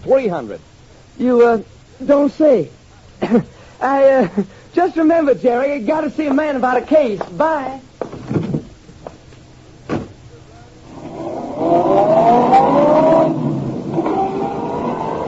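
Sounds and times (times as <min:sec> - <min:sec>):
speech: 0:00.0 - 0:08.4
sharp thuds: 0:08.0 - 0:09.2, 0:09.8 - 0:10.2
car engine revving up with a rising whine as the car drives off: 0:10.8 - 0:15.2.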